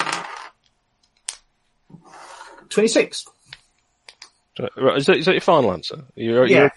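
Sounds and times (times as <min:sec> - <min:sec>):
dice rattling across a hard tabletop: 0:00.0 - 0:00.6
speech: 0:02.7 - 0:03.4, 0:04.6 - 0:06.7.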